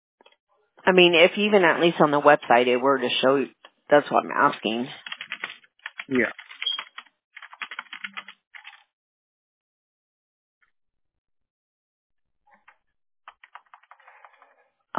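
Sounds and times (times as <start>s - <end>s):
speech: 0.8s - 5.0s, 6.1s - 6.4s
typing on a computer keyboard: 5.0s - 8.8s, 13.3s - 14.4s.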